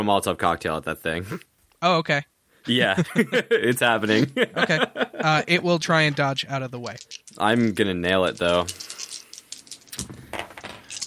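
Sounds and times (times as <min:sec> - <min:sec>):
speech: 0:00.0 - 0:08.9
laughter: 0:02.8 - 0:05.5
dice being rolled: 0:06.7 - 0:11.0.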